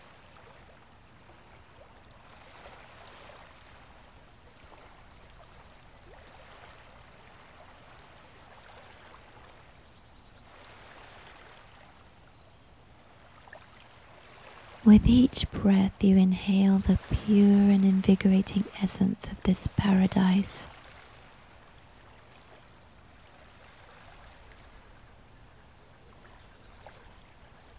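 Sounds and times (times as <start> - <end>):
ocean waves: 14.4 - 20.7
speech: 14.9 - 20.8.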